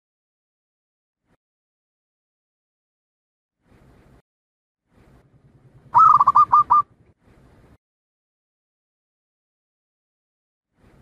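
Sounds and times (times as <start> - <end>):
zebra dove song of soft trilled coos: 5.9 - 6.9.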